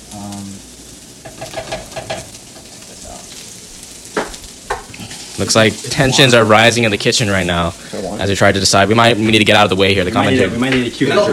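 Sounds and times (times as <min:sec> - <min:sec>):
rice and chives sizzling in sauce in a pan: 0:00.0 - 0:11.3
scraping and stirring rice and chives in a pan: 0:01.2 - 0:05.9
speech: 0:01.4 - 0:01.9, 0:05.4 - 0:11.3.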